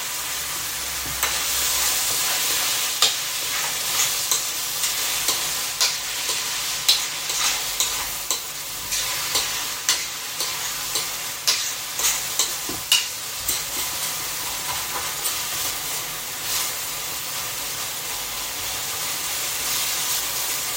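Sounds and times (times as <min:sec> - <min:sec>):
bright sizzle of meat frying in a pan: 0:00.0 - 0:20.7
long round stainless steel ice-cream spoon stirring browning meat in a pan: 0:01.2 - 0:15.6.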